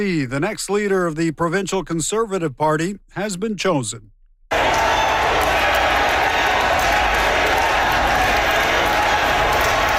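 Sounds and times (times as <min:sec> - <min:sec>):
speech: 0:00.0 - 0:04.6
large crowd of supporters cheering and chanting: 0:04.5 - 0:09.9.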